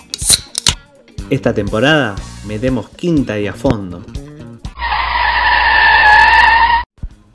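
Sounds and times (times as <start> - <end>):
speech: 1.3 - 4.2
car tires screeching while accelerating hard: 4.8 - 6.9.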